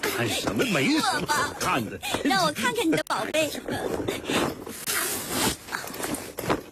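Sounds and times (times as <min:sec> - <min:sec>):
speech: 0:00.2 - 0:05.6
double-shoulder backpack zipper pulls: 0:04.7 - 0:06.6.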